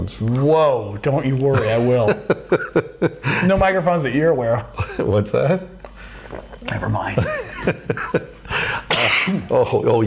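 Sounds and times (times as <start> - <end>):
speech: 0.0 - 10.0
laughter: 1.5 - 3.5, 7.2 - 8.7
man coughing close to the microphone: 8.8 - 9.5.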